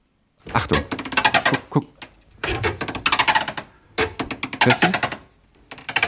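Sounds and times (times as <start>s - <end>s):
refrigerator door squeaking with chattering creaks: 0.5s - 1.8s, 2.4s - 5.2s
speech: 0.6s - 0.9s, 4.6s - 5.1s.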